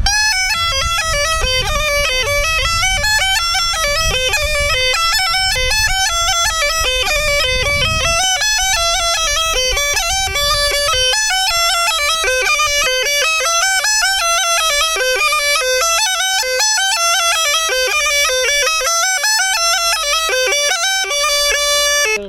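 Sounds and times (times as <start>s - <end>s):
small gajda bagpipe playing: 0.0s - 22.2s.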